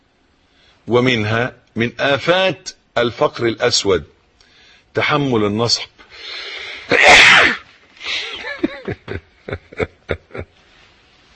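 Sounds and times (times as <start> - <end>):
speech: 0.9 - 4.1, 5.0 - 7.2, 8.8 - 10.2
person sneezing: 6.6 - 8.5
laughter: 8.2 - 10.6.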